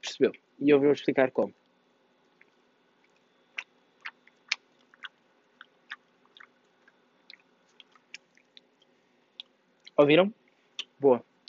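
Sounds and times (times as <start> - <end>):
speech: 0.0 - 1.6, 10.0 - 10.4, 11.0 - 11.3
person chewing toast: 2.3 - 10.0.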